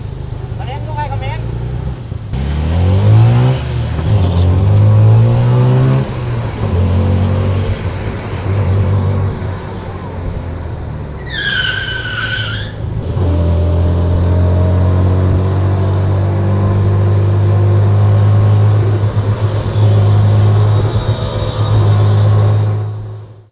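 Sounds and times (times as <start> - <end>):
street traffic: 0.0 - 23.5
car wheels squealing: 6.0 - 13.0, 18.8 - 22.9.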